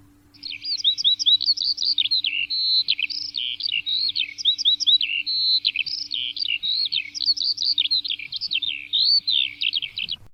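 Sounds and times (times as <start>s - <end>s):
faint low hum: 0.0s - 10.3s
skylark singing: 0.0s - 10.3s.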